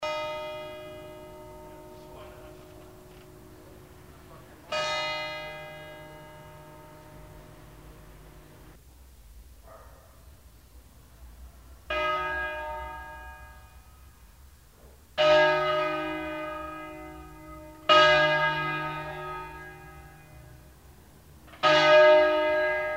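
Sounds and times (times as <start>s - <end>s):
church bells ringing for a funeral: 0.0s - 8.8s, 11.9s - 14.4s, 15.2s - 22.9s.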